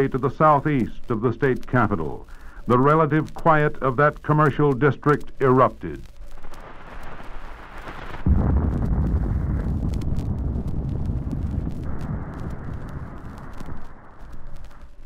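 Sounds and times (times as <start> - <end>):
speech: 0.0 - 6.1
loud explosion at a cold storage warehouse: 6.4 - 15.0
deep thunderous rumble: 6.5 - 15.0.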